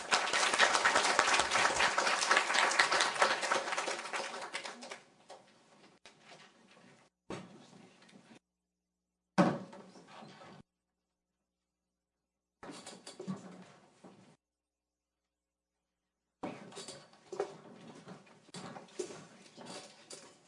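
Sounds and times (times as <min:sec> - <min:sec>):
audience applause for panelists: 0:00.0 - 0:05.0.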